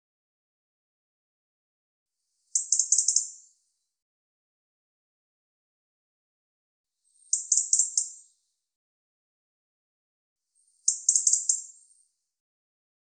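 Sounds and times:
European robin giving high bursts of rapid stuttering ticks: 2.5s - 3.4s, 7.3s - 8.3s, 10.8s - 11.8s.

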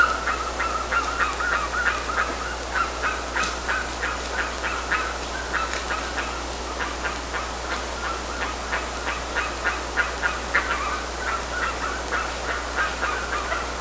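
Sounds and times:
bird calls in a steady stream of short rapid notes: 0.0s - 13.8s.

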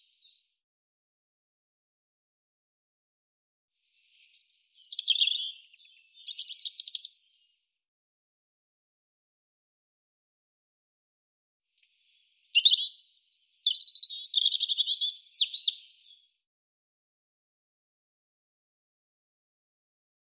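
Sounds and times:
European robin singing: 4.2s - 7.4s, 12.0s - 16.3s.

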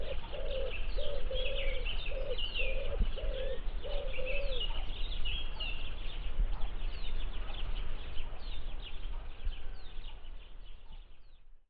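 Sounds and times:
bird cooing soft low notes: 0.0s - 4.9s
birds giving high chirps and twitters: 0.0s - 11.6s.

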